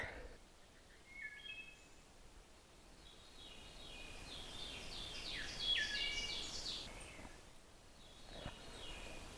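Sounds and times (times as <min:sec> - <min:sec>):
steady outdoor hiss: 0:00.0 - 0:09.3
male wood thrush singing flute-like phrases: 0:00.8 - 0:02.0, 0:03.0 - 0:07.1.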